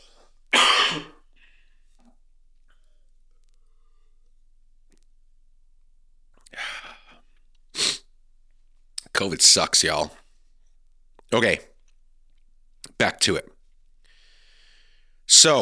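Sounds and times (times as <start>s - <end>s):
person coughing harshly: 0.5s - 1.3s
speech: 0.9s - 1.1s, 9.2s - 10.2s, 11.3s - 11.7s, 13.0s - 13.5s, 15.3s - 15.6s.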